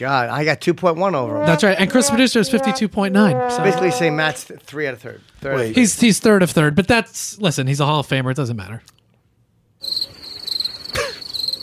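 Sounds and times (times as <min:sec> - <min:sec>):
speech: 0:00.0 - 0:09.0
crickets chirping: 0:09.8 - 0:11.6.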